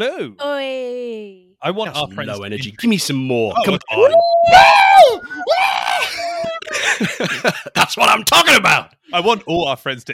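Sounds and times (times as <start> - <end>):
speech: 0.0 - 5.6, 7.0 - 10.1
two people screaming excitedly in greeting: 3.9 - 6.6
laughter: 5.0 - 8.0.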